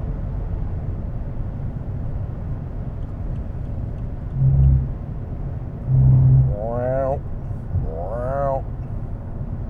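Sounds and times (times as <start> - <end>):
steady car engine and road roar: 0.0 - 9.6
car tires hitting road rumble strips while passing another vehicle: 4.2 - 8.7
person talking: 5.9 - 7.2, 7.8 - 8.6.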